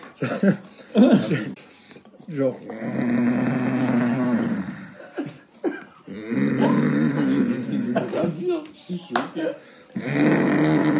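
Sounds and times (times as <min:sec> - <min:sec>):
laughter: 0:00.0 - 0:01.6, 0:05.0 - 0:09.6
speech: 0:00.2 - 0:01.7, 0:02.3 - 0:03.5, 0:08.5 - 0:10.9
voice imitating a man's loud snoring: 0:02.6 - 0:05.0, 0:06.1 - 0:07.9, 0:10.0 - 0:10.9.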